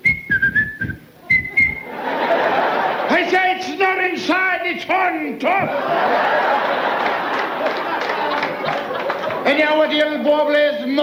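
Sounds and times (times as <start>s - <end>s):
referee's whistle short shrill blasts: 0.0s - 1.9s
rush of broadband noise: 0.0s - 7.6s
laughter: 1.2s - 3.6s, 5.5s - 10.0s
speech: 4.1s - 6.9s, 9.5s - 11.0s.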